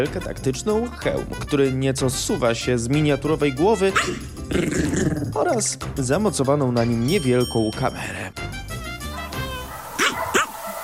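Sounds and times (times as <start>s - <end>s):
speech: 0.0s - 8.4s
small Chihuahua yapping: 4.0s - 4.3s, 9.6s - 10.8s
Chihuahua whining: 4.0s - 5.2s, 9.4s - 10.8s.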